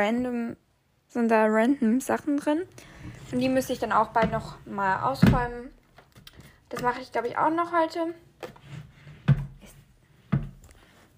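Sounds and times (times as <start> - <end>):
speech: 0.0 - 5.8, 6.7 - 8.6
crooked wooden drawer being opened and shut: 3.0 - 5.6, 8.4 - 10.6.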